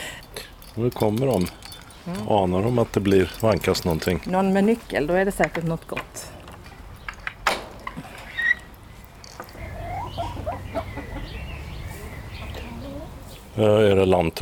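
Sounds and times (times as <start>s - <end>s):
speech: 0.8s - 6.4s, 13.6s - 14.4s
mixed-breed hens clucking softly: 9.4s - 13.5s
Swedish flower hen rooster clucking: 9.6s - 11.5s.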